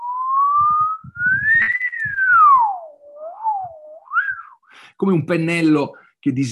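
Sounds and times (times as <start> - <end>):
person whistling a tone: 0.0 - 4.6
speech: 5.0 - 6.5.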